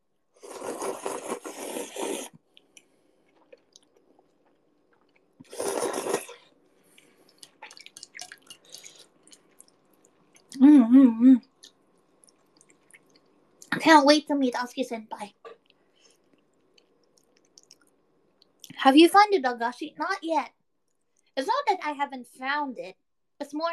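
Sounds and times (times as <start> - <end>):
loud wet slurping while eating: 0.4 - 2.4, 5.4 - 9.4
soft chewing and smacking while eating: 2.5 - 6.1, 6.8 - 10.6, 11.5 - 13.7, 15.5 - 18.7
person humming: 10.6 - 11.4
speech: 11.0 - 11.5, 13.9 - 15.4, 18.8 - 20.6, 21.4 - 23.7.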